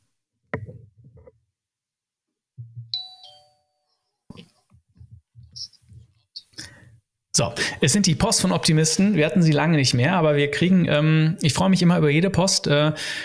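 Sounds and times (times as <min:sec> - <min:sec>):
bright ringing doorbell-like chime in a podcast shoutout jingle: 0:02.9 - 0:04.0
speech: 0:07.4 - 0:13.2.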